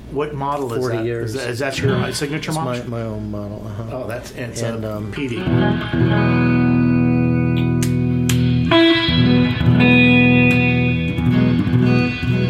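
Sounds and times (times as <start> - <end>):
speech: 0.1 - 7.0
signature model electric guitar chords with heavy reverb: 1.8 - 2.7, 5.4 - 12.4.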